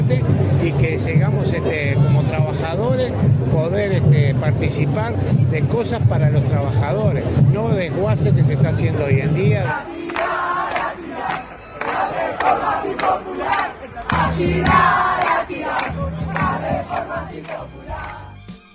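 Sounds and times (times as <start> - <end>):
low drum-like pulse: 0.0 - 18.3
speech: 0.1 - 10.0, 14.4 - 15.1
students chanting in unison at an outdoor street protest: 8.7 - 18.4.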